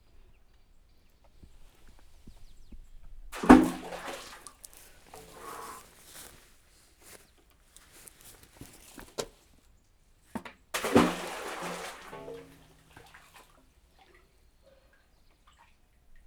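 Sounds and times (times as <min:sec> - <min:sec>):
two stones dropped through a hole into water of an uncovered well: 0:01.4 - 0:06.4, 0:07.8 - 0:09.4, 0:10.3 - 0:13.6.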